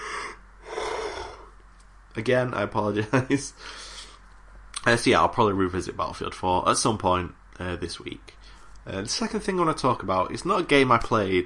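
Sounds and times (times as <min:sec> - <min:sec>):
big breathy yawn: 0:00.0 - 0:01.5
speech: 0:02.2 - 0:03.9, 0:04.8 - 0:11.4.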